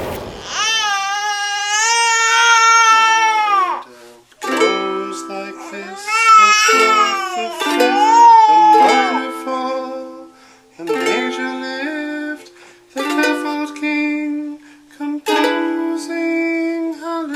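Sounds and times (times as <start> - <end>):
baby crying and wailing: 0.4 - 3.9, 5.0 - 9.4
father softly strumming guitar chords: 4.4 - 14.0, 15.3 - 16.4.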